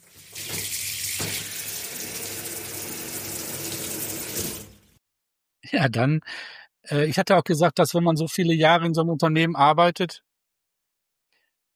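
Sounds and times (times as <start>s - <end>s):
warm shower water running: 0.0s - 5.0s
speech: 5.7s - 10.2s.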